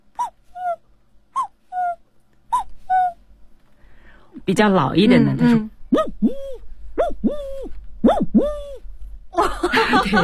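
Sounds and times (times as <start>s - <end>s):
voice imitating an older cuckoo calling: 0.2s - 0.8s, 1.4s - 3.2s, 5.9s - 8.8s
speech: 4.5s - 5.7s
laughter: 9.4s - 10.2s.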